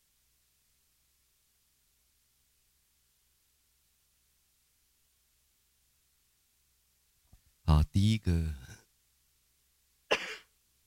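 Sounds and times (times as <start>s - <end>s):
speech: 8.0s - 8.6s
person with cold symptoms coughing: 10.1s - 10.5s.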